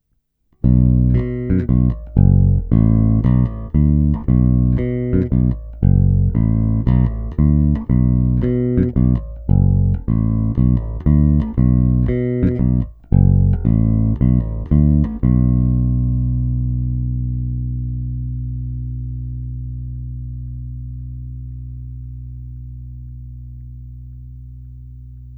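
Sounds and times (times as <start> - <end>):
bass guitar with roundwound nickel strings played between pickups, tone fully open: 0.6 - 25.3.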